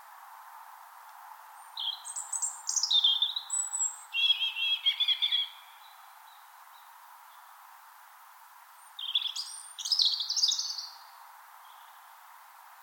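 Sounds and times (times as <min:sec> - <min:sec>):
soft hiss: 0:00.0 - 0:12.8
European robin singing high whistles and trills in Finland: 0:01.6 - 0:07.6, 0:08.8 - 0:12.2.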